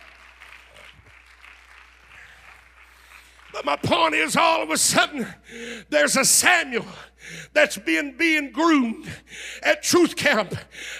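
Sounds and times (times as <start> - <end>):
audience applause: 0.0 - 4.2
speech: 3.6 - 10.9.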